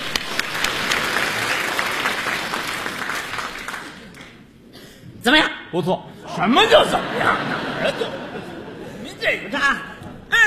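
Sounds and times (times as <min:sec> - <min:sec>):
audience applause at a crosstalk comedy show: 0:00.0 - 0:04.4
speech: 0:05.2 - 0:08.2
laughter: 0:06.3 - 0:10.3.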